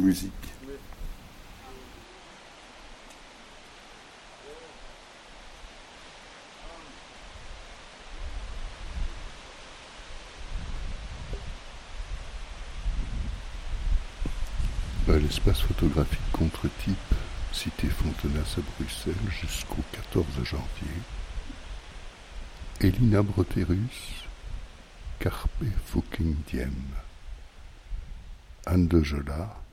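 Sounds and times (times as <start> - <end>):
speech: 0.0 - 0.5, 15.2 - 21.2, 22.8 - 24.2, 25.2 - 27.0, 28.7 - 29.6
strong wind gusts buffeting close to the microphone: 0.0 - 2.0, 10.4 - 28.6
wind rustling through poplar leaves: 0.0 - 29.7.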